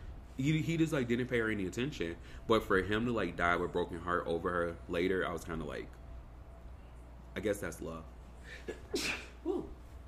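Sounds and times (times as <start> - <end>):
speech: 0.4 - 6.0, 7.4 - 9.7
single sharp sneeze: 8.5 - 9.8.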